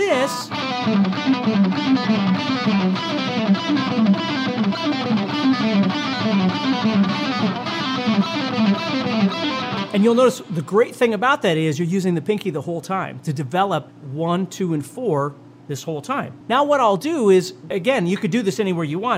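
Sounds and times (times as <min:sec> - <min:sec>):
distorted electric guitar pull-offs with delay and reverb: 0:00.0 - 0:10.3
speech: 0:00.3 - 0:03.0, 0:10.0 - 0:19.1.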